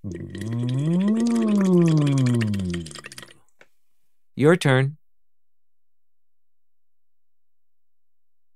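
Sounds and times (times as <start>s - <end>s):
voice singing through a straw into water: 0.0s - 3.3s
water bubbling from a straw: 0.0s - 3.5s
speech: 4.4s - 5.0s.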